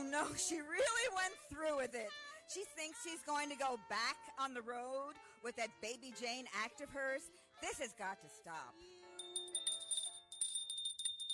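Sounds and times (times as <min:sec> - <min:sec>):
speech: 0:00.1 - 0:09.0
hand bell ringing upstairs: 0:09.2 - 0:11.3.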